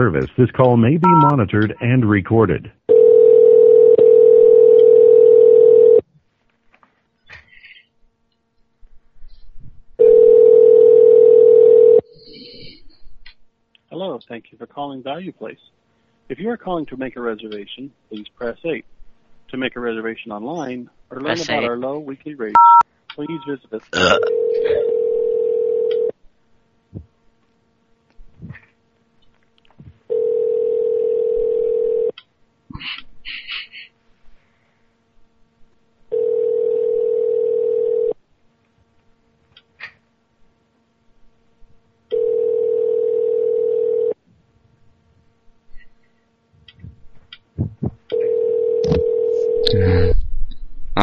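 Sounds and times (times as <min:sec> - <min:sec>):
speech: 0:00.0 - 0:02.8, 0:14.0 - 0:18.9, 0:19.5 - 0:24.9, 0:32.8 - 0:33.7
telephone ringback tone on a call to a hotel: 0:02.9 - 0:06.0, 0:10.0 - 0:12.0, 0:22.6 - 0:23.5, 0:24.3 - 0:26.1, 0:30.1 - 0:32.1, 0:36.1 - 0:38.2, 0:42.1 - 0:44.2, 0:48.1 - 0:49.7.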